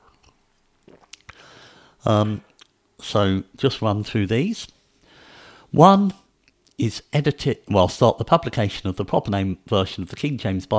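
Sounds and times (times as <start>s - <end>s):
wet mouth clicks: 0.0s - 1.4s
slurping sip of water: 0.8s - 1.4s
speech: 2.0s - 4.8s, 5.7s - 6.2s, 6.8s - 10.7s.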